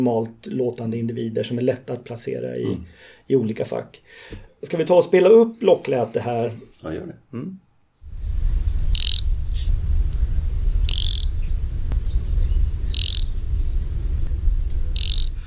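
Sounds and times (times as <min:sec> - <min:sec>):
speech: 0:00.0 - 0:07.6
steady low rumble of noise: 0:08.0 - 0:15.4
Arctic warbler giving short hissing buzzy calls: 0:08.6 - 0:09.7, 0:10.8 - 0:11.6, 0:12.8 - 0:13.4, 0:14.9 - 0:15.4.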